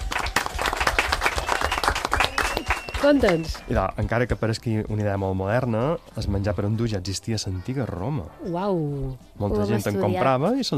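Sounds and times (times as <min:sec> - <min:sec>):
small group applauding: 0:00.0 - 0:03.8
speech: 0:03.0 - 0:10.7.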